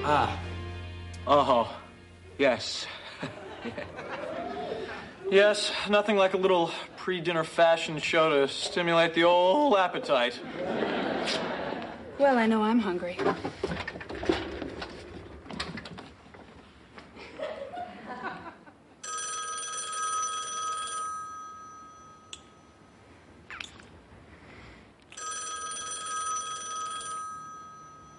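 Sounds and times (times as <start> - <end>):
speech: 0.0 - 0.5, 1.2 - 1.8, 2.4 - 4.3, 5.3 - 11.5, 12.2 - 14.4
laughter: 3.0 - 5.3, 9.9 - 12.2, 17.2 - 18.8
clattering: 13.2 - 16.4
telephone bell ringing with a bright metallic trill: 19.0 - 23.0, 25.2 - 28.1.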